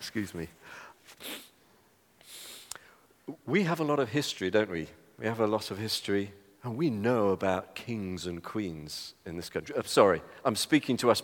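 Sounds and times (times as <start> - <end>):
speech: 0.0 - 1.4, 3.3 - 11.2
person sniffing at the end of a cold: 0.6 - 1.6, 2.2 - 3.0.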